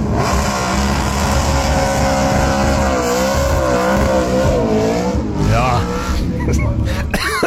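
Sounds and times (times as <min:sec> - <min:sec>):
GT Falcon car engine roaring and revving: 0:00.0 - 0:07.2.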